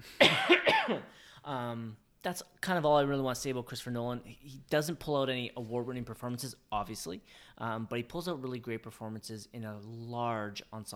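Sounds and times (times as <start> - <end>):
person coughing in rough throaty bursts: 0.0 - 1.2
catch of breath: 1.1 - 1.4
speech: 1.5 - 10.9.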